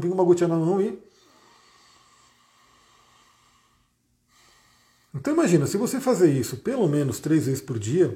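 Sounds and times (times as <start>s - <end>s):
speech: 0.0s - 1.1s, 5.2s - 8.1s
deep inhalation through the nose: 1.1s - 5.2s.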